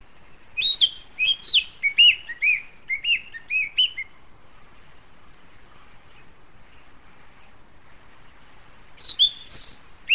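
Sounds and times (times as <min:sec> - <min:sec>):
narcissus flycatcher singing: 0:00.2 - 0:04.2, 0:09.0 - 0:10.1.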